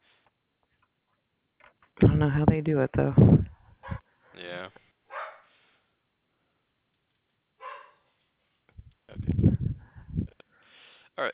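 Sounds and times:
speech: 0:01.7 - 0:03.5, 0:11.2 - 0:11.3
dog barking: 0:03.8 - 0:04.4, 0:05.1 - 0:05.5, 0:07.6 - 0:08.2.

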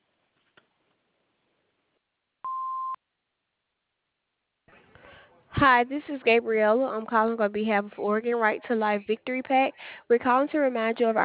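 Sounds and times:
answering machine beep: 0:02.5 - 0:03.0
speech: 0:05.6 - 0:11.2.

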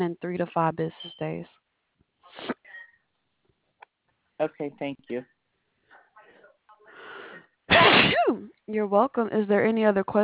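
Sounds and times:
speech: 0:00.0 - 0:01.6, 0:04.4 - 0:05.4, 0:08.0 - 0:10.2
sneeze during a customer support phone call: 0:02.3 - 0:02.8, 0:07.7 - 0:08.5.

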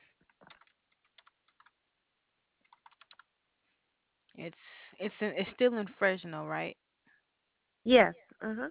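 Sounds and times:
typing on a computer keyboard: 0:00.3 - 0:01.8, 0:02.6 - 0:03.3
speech: 0:04.4 - 0:06.8, 0:07.8 - 0:08.6.

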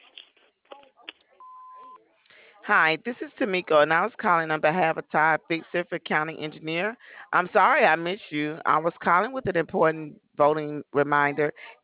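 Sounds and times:
answering machine beep: 0:01.4 - 0:02.0
speech: 0:02.7 - 0:11.8.

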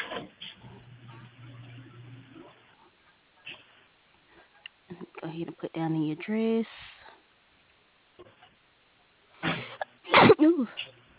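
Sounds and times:
speech: 0:05.3 - 0:06.9
person sneezing: 0:09.4 - 0:10.8.

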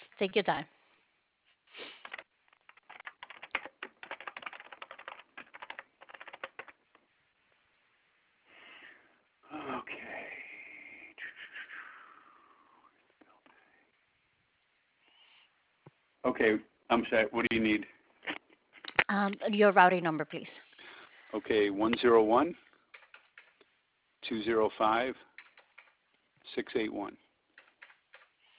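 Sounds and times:
speech: 0:00.2 - 0:00.8, 0:16.4 - 0:18.0, 0:19.1 - 0:20.6, 0:21.3 - 0:22.6, 0:24.3 - 0:25.3, 0:26.6 - 0:27.2
typing on a computer keyboard over a phone line: 0:01.9 - 0:06.9, 0:22.9 - 0:23.7, 0:25.2 - 0:26.0, 0:27.5 - 0:28.4.

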